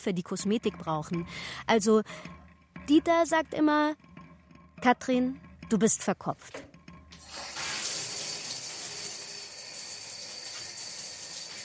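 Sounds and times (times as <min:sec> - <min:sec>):
speech: 0:00.0 - 0:04.1, 0:04.8 - 0:06.7
shower running: 0:07.2 - 0:11.6.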